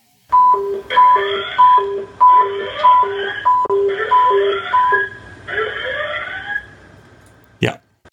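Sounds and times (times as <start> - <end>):
train radio emergency call alarm tone: 0.3 - 6.8.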